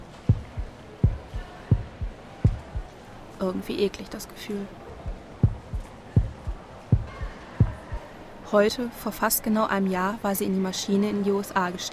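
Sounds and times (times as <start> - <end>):
heartbeat thumping in lub-dub pairs: 0.2 - 2.9, 5.0 - 8.1
speech: 3.4 - 4.8, 8.5 - 11.9.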